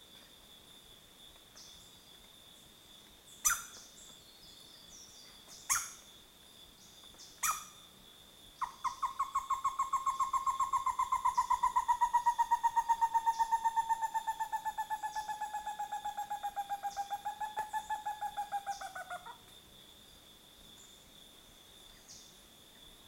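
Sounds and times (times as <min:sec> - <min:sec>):
Stresemann's bristlefront Merulaxis stresemanni calling: 0:08.6 - 0:19.4.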